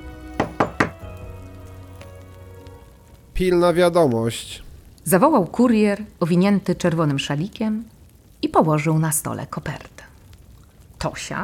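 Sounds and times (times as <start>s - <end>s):
knocking on a door: 0.4s - 1.0s
speech: 3.4s - 9.9s, 11.0s - 11.4s.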